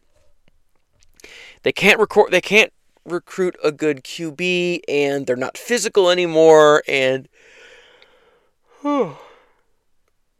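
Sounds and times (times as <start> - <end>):
speech: 1.6 - 7.6, 8.8 - 9.2
tired person yawning with a voiced groan: 8.7 - 9.6.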